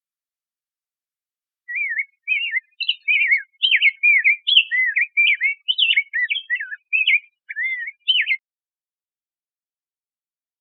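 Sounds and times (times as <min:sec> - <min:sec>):
rose-breasted grosbeak warbling song: 0:01.7 - 0:08.4.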